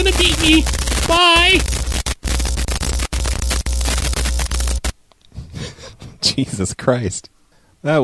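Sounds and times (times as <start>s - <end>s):
phone line static: 0.0s - 5.0s
speech: 0.2s - 1.8s, 6.3s - 8.0s.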